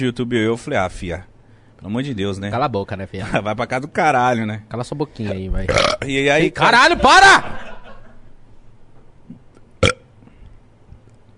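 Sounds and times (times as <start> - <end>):
speech: 0.0 - 7.6
short loud burp: 5.7 - 6.0, 9.8 - 10.1
laughter: 6.8 - 8.3.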